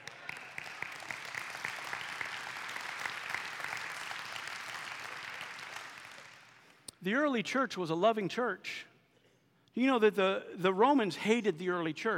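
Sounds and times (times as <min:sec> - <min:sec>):
crowd applauding: 0:00.0 - 0:06.8
speech: 0:07.0 - 0:08.9, 0:09.8 - 0:12.1.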